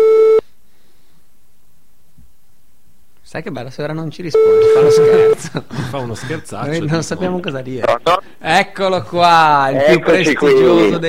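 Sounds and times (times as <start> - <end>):
speech: 3.3 - 11.0
outgoing phone call telephone ringing tone: 4.4 - 5.4
laughter: 4.4 - 8.2, 9.8 - 11.0.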